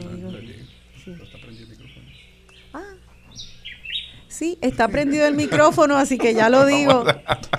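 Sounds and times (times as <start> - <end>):
Puerto Rican woodpecker Melanerpes puertorricensis calling: 0.6 - 5.6
speech: 1.0 - 3.6, 4.4 - 7.5
laughter: 4.5 - 7.5.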